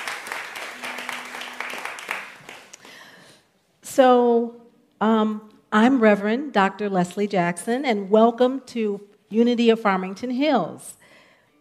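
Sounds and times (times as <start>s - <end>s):
crowd applause for music team: 0.0s - 3.2s
speech: 4.0s - 11.0s.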